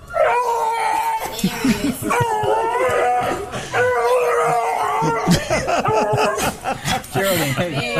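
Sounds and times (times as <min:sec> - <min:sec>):
dog howling in imitation of a spacecraft: 0:00.0 - 0:01.4, 0:02.0 - 0:06.5
people laughing and chuckling: 0:01.3 - 0:07.9.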